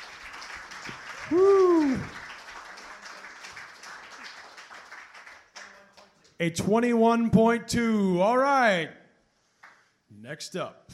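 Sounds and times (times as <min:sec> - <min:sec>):
audience applause for a poet: 0:00.0 - 0:05.9
faint voice or cheer in the crowd: 0:01.1 - 0:02.2
speech: 0:01.3 - 0:01.5, 0:06.4 - 0:09.0, 0:10.2 - 0:10.9.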